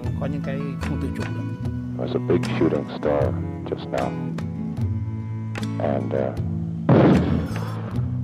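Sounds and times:
speech: 0:00.2 - 0:04.5, 0:05.8 - 0:07.7
mortar fire thumps and booms: 0:06.9 - 0:08.1.

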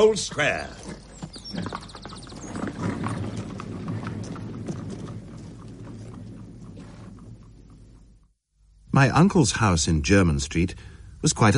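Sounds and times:
speech: 0:00.0 - 0:01.8, 0:09.0 - 0:11.5
horses' hooves clip-clopping: 0:00.0 - 0:08.3
low rumbling background: 0:01.0 - 0:09.3.

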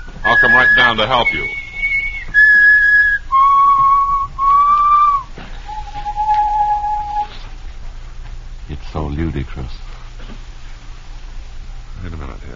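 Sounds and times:
person whistling a short slow tune: 0:00.0 - 0:07.4
speech: 0:00.2 - 0:01.6, 0:09.2 - 0:09.8.

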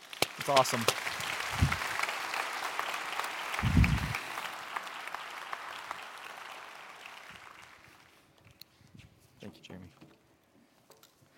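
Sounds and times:
sizable audience applauding a panel: 0:00.0 - 0:08.2
speech: 0:00.5 - 0:01.7.

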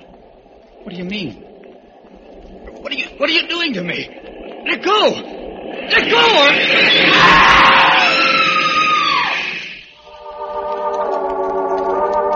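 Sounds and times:
droning whine of a settling train: 0:00.0 - 0:12.3
speech: 0:00.9 - 0:01.5, 0:02.8 - 0:07.4
woman screaming: 0:07.0 - 0:09.5.

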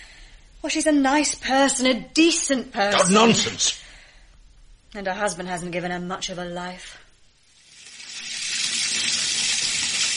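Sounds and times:
speech: 0:00.6 - 0:03.8, 0:04.9 - 0:07.0
bath water gushing from tap: 0:07.6 - 0:10.1.

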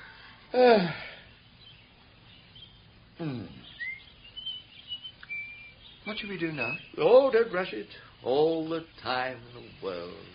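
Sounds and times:
faint bird chirps and twittering: 0:00.0 - 0:10.3
speech: 0:00.5 - 0:01.1, 0:06.1 - 0:10.3
bird squawking: 0:03.2 - 0:07.7.

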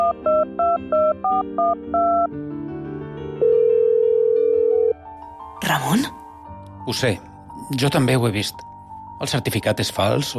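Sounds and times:
telephone keypad beeps: 0:00.0 - 0:02.3
speech: 0:00.5 - 0:02.8, 0:05.7 - 0:06.2, 0:06.8 - 0:10.3
steady telephone line tone: 0:03.4 - 0:05.0.

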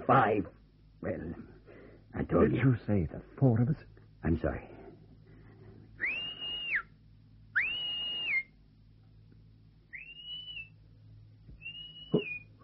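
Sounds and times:
speech: 0:00.1 - 0:04.8
person whistling sustained notes: 0:06.0 - 0:06.9, 0:07.6 - 0:08.6, 0:09.9 - 0:10.7, 0:11.6 - 0:12.5.

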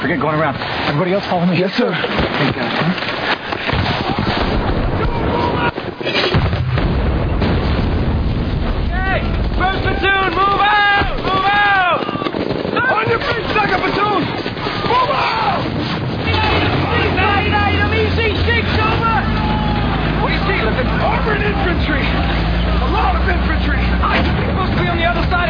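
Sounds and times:
speech: 0:00.0 - 0:03.3
mortar and grenade launcher blasts pounding a building: 0:03.6 - 0:21.1, 0:23.7 - 0:25.4
people shouting: 0:03.9 - 0:06.0, 0:08.9 - 0:24.2.

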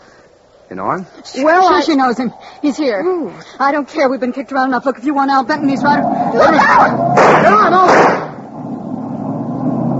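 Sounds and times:
speech: 0:00.7 - 0:08.2
car speeding past with engine roaring: 0:05.5 - 0:09.9.

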